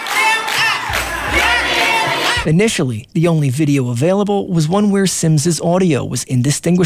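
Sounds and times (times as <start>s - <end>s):
large crowd of students and parents chanting and shouting: 0.0s - 2.5s
speech: 2.4s - 6.8s.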